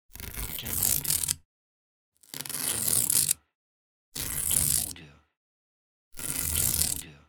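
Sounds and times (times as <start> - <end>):
Scotch tape: 0.2 - 1.4, 2.4 - 3.4, 4.2 - 4.9, 6.2 - 7.0.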